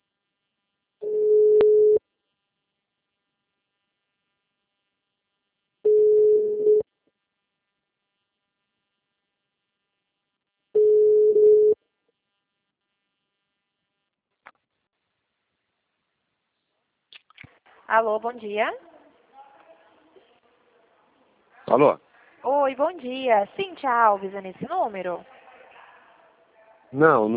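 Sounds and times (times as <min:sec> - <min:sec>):
telephone ringing tone while placing a call: 0:01.0 - 0:02.0, 0:05.9 - 0:06.8, 0:10.8 - 0:11.8
speech: 0:17.9 - 0:18.9, 0:21.7 - 0:25.3, 0:26.9 - 0:27.3.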